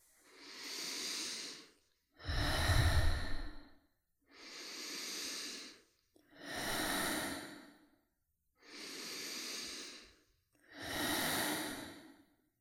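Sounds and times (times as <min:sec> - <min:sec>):
deep belly breathing, inhaling and exhaling: 0:00.1 - 0:08.0, 0:08.6 - 0:12.4.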